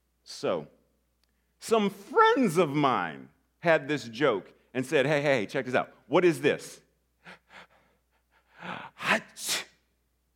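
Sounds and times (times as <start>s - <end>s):
speech: 0.3s - 0.8s, 1.6s - 7.7s, 8.6s - 9.6s
person sneezing: 8.6s - 9.8s.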